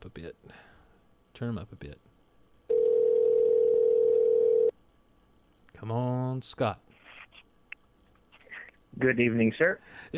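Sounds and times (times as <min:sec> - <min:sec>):
speech: 0:01.4 - 0:02.1, 0:05.8 - 0:06.9, 0:09.0 - 0:10.1
telephone ringback tone of an outgoing call: 0:02.7 - 0:04.7.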